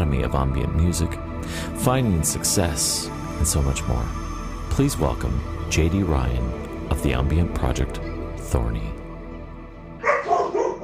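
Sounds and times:
speech: 0:00.2 - 0:09.0
dog barking: 0:10.0 - 0:10.8.

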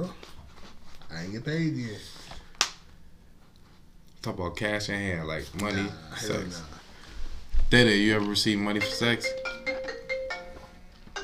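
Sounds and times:
speech: 0:01.2 - 0:02.2, 0:04.2 - 0:06.8, 0:07.7 - 0:09.4
phone ringtone with electronic beeping notes: 0:08.8 - 0:11.2.

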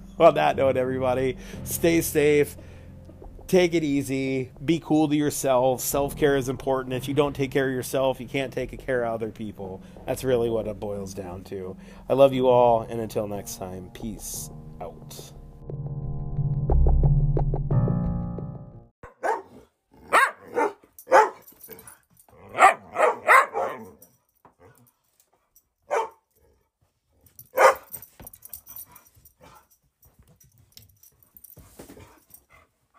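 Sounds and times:
music: 0:00.0 - 0:19.0
speech: 0:00.2 - 0:02.8, 0:03.5 - 0:16.0
dogs barking in sharp loud yelps: 0:19.0 - 0:21.8, 0:22.4 - 0:24.1, 0:25.9 - 0:26.2, 0:27.5 - 0:28.0.

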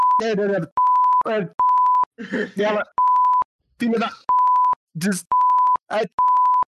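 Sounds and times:
censor bleeps: 0:00.0 - 0:02.1, 0:02.8 - 0:03.5, 0:04.3 - 0:06.7
speech: 0:00.2 - 0:01.6, 0:02.2 - 0:03.0, 0:03.8 - 0:04.3, 0:05.0 - 0:06.3
laughter: 0:02.2 - 0:02.8.

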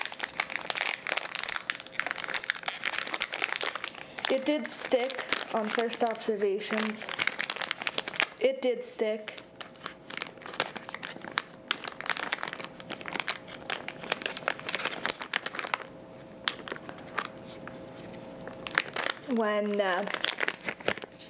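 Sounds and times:
plastic packaging around a cane tip crinkling as it is unwrapped: 0:00.0 - 0:08.4, 0:09.1 - 0:21.2
speech: 0:04.3 - 0:07.2, 0:08.4 - 0:09.5, 0:19.4 - 0:20.3.

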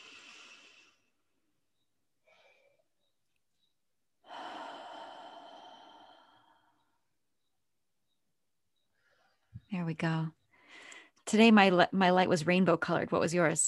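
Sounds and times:
person inhaling deeply during a relaxation exercise: 0:00.0 - 0:01.1, 0:04.2 - 0:07.0
speech: 0:09.7 - 0:10.4, 0:11.3 - 0:13.6.

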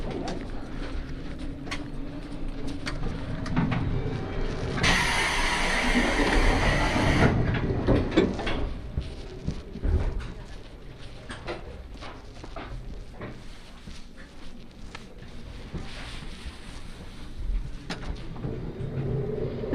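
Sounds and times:
limited express train departing and rolling along the rails in Kyushu: 0:00.0 - 0:09.4, 0:17.8 - 0:19.7
loud burst of hissing: 0:04.8 - 0:07.4.

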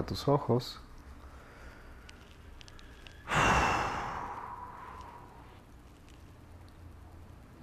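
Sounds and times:
speech: 0:00.0 - 0:00.9
deep breath inhaling through the nose and exhaling through the mouth: 0:01.2 - 0:05.6.

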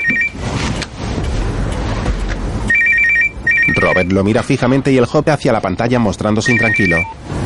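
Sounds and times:
mobile phone ringing with an electronic trill: 0:00.0 - 0:00.4, 0:02.7 - 0:04.2, 0:06.4 - 0:07.2
steady low rumble of noise: 0:00.0 - 0:07.4
speech: 0:03.8 - 0:07.4.

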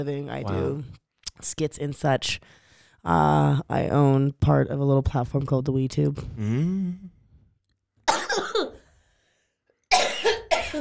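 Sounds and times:
speech: 0:00.0 - 0:07.1
person in a loud coughing fit: 0:08.1 - 0:08.8, 0:09.9 - 0:10.7.

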